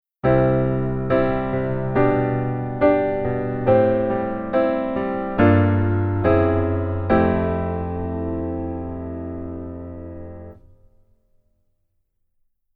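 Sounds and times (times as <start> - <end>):
keyboard: 0.2 - 10.7.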